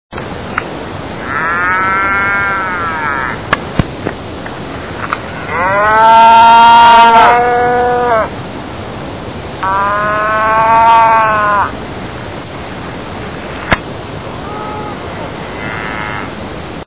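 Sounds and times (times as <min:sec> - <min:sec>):
cow mooing: 0:01.2 - 0:03.4, 0:05.3 - 0:08.3, 0:09.6 - 0:11.7, 0:14.4 - 0:16.4.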